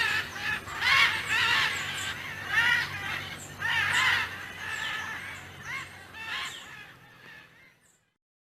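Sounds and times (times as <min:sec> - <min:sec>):
military macaw squawking: 0:00.0 - 0:07.9.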